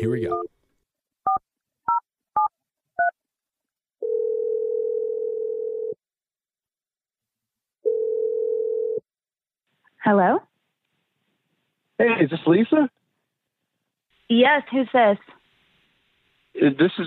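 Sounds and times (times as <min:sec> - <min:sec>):
speech: 0:00.0 - 0:00.6, 0:10.0 - 0:10.5, 0:12.0 - 0:13.0, 0:14.3 - 0:15.4, 0:16.6 - 0:17.0
telephone ring tone: 0:04.0 - 0:06.0, 0:07.8 - 0:09.0.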